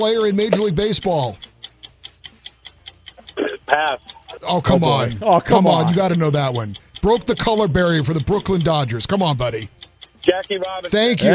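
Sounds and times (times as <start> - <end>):
speech: 0.0 - 1.5, 3.7 - 11.3
game show countdown clock ticking: 0.0 - 11.3
laughter: 3.3 - 8.6.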